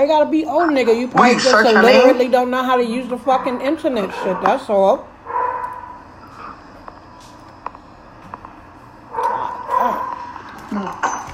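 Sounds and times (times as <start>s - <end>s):
speech: 0.0s - 5.1s
steady noisy room hum: 0.0s - 11.3s
dogs barking and yipping: 3.0s - 6.1s, 9.1s - 10.4s.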